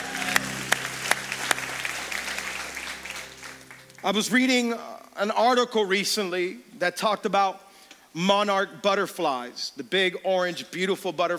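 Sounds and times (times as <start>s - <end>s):
congregation applauding at a church service: 0.0s - 4.8s
speech: 4.0s - 7.6s, 8.2s - 11.3s.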